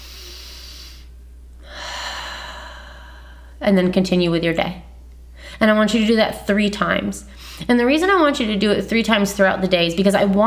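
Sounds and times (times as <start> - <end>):
deep breath during a guided visualization exercise: 0.0 - 3.6
steady low hum: 0.0 - 10.4
speech: 3.6 - 4.9, 5.6 - 10.4.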